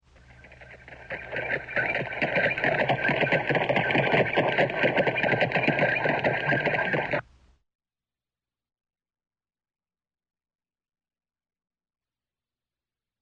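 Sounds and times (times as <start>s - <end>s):
stagecoach: 0.2s - 7.2s.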